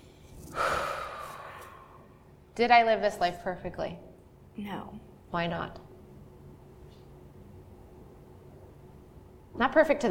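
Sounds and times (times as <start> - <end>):
deep breath: 0.0 - 2.1
speech: 2.6 - 5.8, 9.6 - 10.0.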